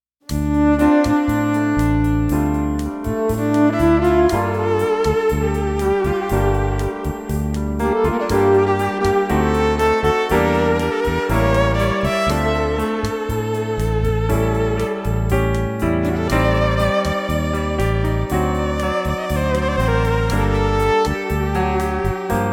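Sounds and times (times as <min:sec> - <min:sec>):
keyboard in cocktail and dinner music: 0:00.3 - 0:22.5
violin in cocktail and dinner music: 0:00.3 - 0:22.5
rhythm loop: 0:01.0 - 0:22.5.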